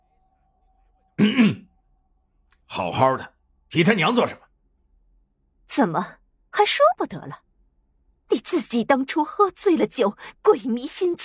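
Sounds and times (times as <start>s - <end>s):
speech: 1.2s - 1.6s, 2.8s - 4.4s, 5.8s - 7.5s, 8.3s - 11.2s
man clearing his throat: 1.2s - 1.7s.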